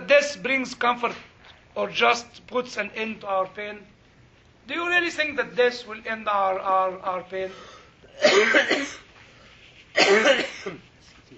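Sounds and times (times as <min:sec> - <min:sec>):
speech: 0:00.1 - 0:04.0, 0:04.7 - 0:09.0, 0:10.0 - 0:10.9
harsh throaty coughing: 0:08.1 - 0:09.1, 0:10.0 - 0:10.9.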